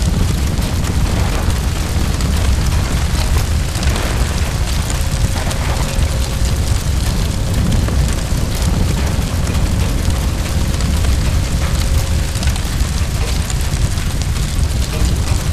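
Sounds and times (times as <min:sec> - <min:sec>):
fire: 0:00.0 - 0:15.5.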